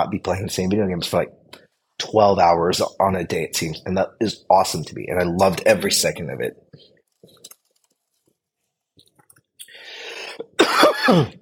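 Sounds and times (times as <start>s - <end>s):
speech: 0.0s - 6.9s, 11.1s - 11.4s
raspy wheezing breath: 9.7s - 10.4s
harsh asthma cough: 10.4s - 11.4s.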